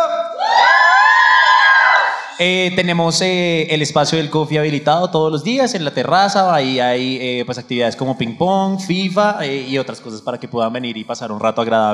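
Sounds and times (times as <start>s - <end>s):
live studio audience shouting and cheering: 0.0s - 2.4s
speech: 2.4s - 11.9s.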